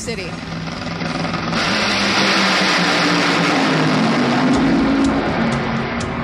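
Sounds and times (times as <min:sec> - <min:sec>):
Toyota Camry Nitro Funny Car drag racer engine roaring: 0:00.0 - 0:06.2.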